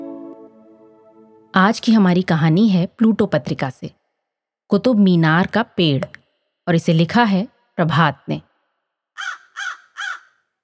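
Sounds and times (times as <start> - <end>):
speech: 1.5 - 4.0, 4.7 - 8.5
crow cawing harsh and raspy: 9.2 - 10.4.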